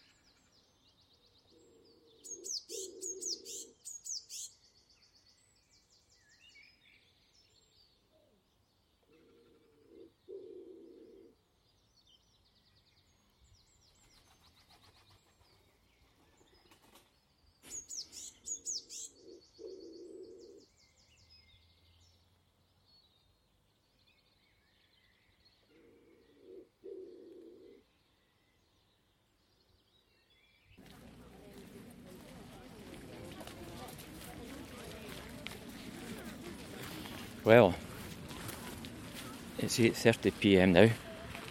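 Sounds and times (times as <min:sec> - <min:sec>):
small birds chirping and tweeting: 0:00.0 - 0:41.5
pigeon cooing: 0:01.6 - 0:03.8, 0:09.2 - 0:11.4, 0:19.1 - 0:20.6, 0:25.8 - 0:27.8
speech: 0:37.5 - 0:37.8, 0:39.6 - 0:41.0.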